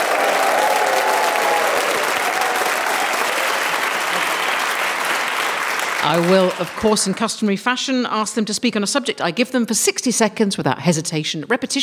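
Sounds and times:
studio audience cheering and whooping: 0.0 - 6.5
studio audience applauding: 0.0 - 7.5
speech: 6.0 - 11.8.

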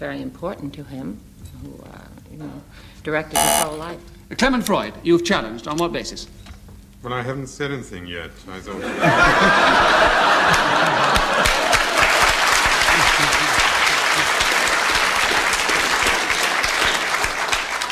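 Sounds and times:
speech: 0.0 - 11.4
scattered audience chuckles and laughter: 8.8 - 14.7
large audience clapping: 9.8 - 17.8.

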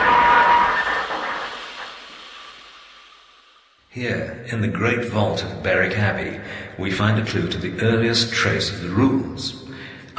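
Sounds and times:
high metallic squeal of train on rails: 0.0 - 2.7
train rolling along rails: 0.0 - 3.2
speech: 4.0 - 9.6.

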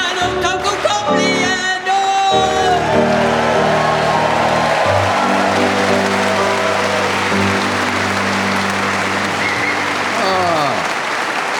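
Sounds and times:
large audience clapping and cheering: 0.0 - 11.5.

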